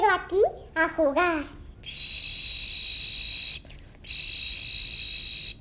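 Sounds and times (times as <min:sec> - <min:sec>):
speech: 0:00.2 - 0:01.6
cricket chirping from a small flowerpot: 0:01.9 - 0:05.5.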